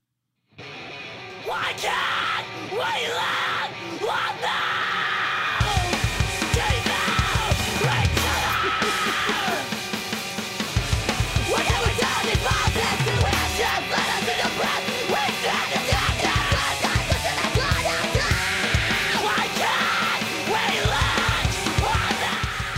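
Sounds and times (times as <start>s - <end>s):
distorted guitars: 0.5s - 22.7s
loud dense punk track: 0.6s - 22.7s
raw screamed vocal: 1.4s - 9.8s, 11.4s - 22.7s
speech: 1.5s - 4.8s
pounding drums: 5.6s - 22.7s.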